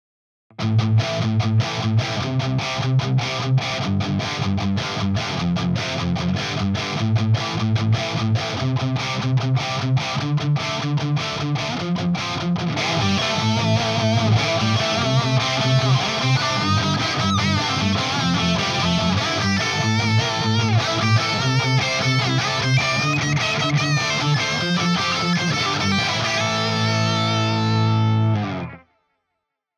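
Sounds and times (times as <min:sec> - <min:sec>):
overdriven electric guitar played with a pick: 0:00.5 - 0:29.1.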